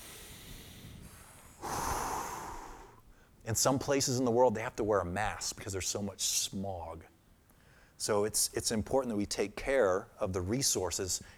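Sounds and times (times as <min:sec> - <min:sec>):
deep human breath in and out: 0:00.0 - 0:03.4
speech: 0:03.5 - 0:07.2, 0:08.0 - 0:11.3.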